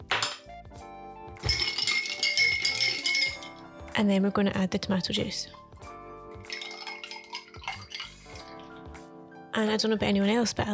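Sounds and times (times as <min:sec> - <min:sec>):
ice stirred in a glass with vodka: 0:01.4 - 0:03.7, 0:06.5 - 0:08.7
speech: 0:04.0 - 0:05.6, 0:09.6 - 0:10.7.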